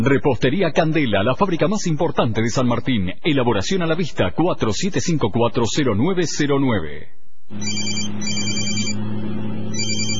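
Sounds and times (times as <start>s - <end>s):
speech: 0.0s - 8.9s
cell phone ringtone trilling in electronic bursts: 7.6s - 9.0s, 9.7s - 10.1s.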